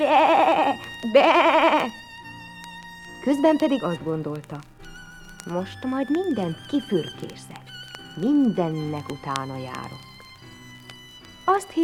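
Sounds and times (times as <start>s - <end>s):
sheep bleating while driven out to pasture: 0.0s - 2.0s
speech: 1.0s - 2.0s, 3.2s - 4.7s, 5.4s - 10.1s, 11.5s - 11.8s.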